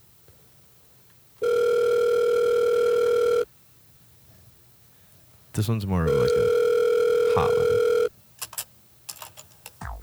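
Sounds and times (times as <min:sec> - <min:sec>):
telephone ring tone heard while calling a number: 0:01.4 - 0:03.5, 0:06.0 - 0:08.6
speech: 0:05.6 - 0:06.6, 0:07.4 - 0:07.9.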